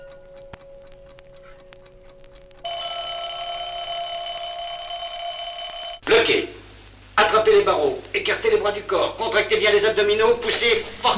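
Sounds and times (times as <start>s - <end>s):
alarm clock ticking: 0.0s - 6.0s
speech: 6.2s - 6.6s, 7.3s - 11.1s.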